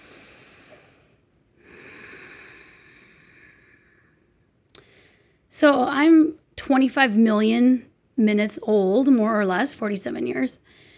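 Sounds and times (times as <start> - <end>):
group of people taking a big deep breath together: 0.0 - 5.5, 10.7 - 10.9
speech: 5.6 - 10.9.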